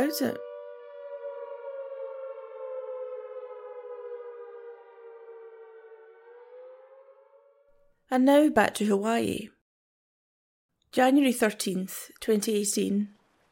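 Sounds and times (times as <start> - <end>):
civil defense cuckoo alert siren wailing along a coast: 0.0 - 8.1
speech: 0.1 - 0.5, 8.1 - 9.6, 10.9 - 13.2.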